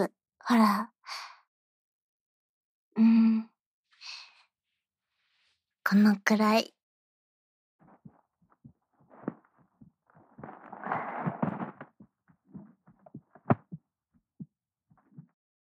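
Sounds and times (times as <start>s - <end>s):
speech: 0.0s - 1.2s, 3.0s - 4.2s, 5.9s - 6.8s
rustling noise: 7.8s - 13.8s
pounding heartbeat: 7.9s - 15.3s.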